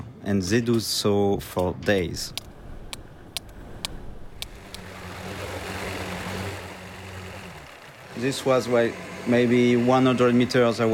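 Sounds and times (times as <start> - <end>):
speech: 0.3 - 2.4, 8.2 - 10.9
boat engine droning and winding down: 1.9 - 10.9
sharp clicks: 2.0 - 5.5.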